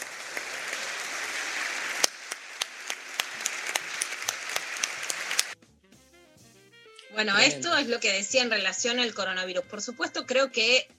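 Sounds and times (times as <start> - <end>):
large crowd in Argentina applauding in a standing ovation: 0.0 - 5.6
speech: 7.2 - 10.9.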